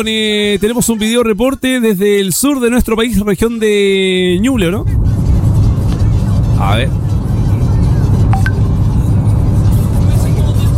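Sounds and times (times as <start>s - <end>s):
speech: 0.0s - 5.2s, 6.6s - 7.1s
heavy traffic engines and road noise by the sea in southern Chile: 3.7s - 10.7s.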